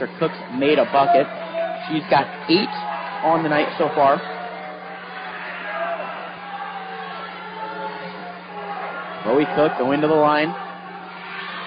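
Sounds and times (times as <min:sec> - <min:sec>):
speech: 0:00.0 - 0:04.3, 0:09.2 - 0:10.6
basketball fans cheering at a game: 0:00.0 - 0:11.6
murmured chatter of basketball fans: 0:00.0 - 0:11.6.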